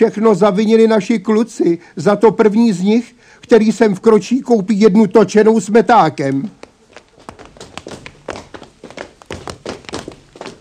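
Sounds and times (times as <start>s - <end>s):
speech: 0.0s - 6.6s
quick footsteps of a group of boys: 6.1s - 10.5s.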